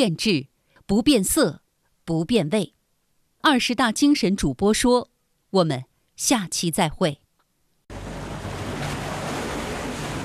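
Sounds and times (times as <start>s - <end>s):
speech: 0.0s - 2.8s, 3.4s - 7.2s
loud ocean surf: 7.9s - 10.2s.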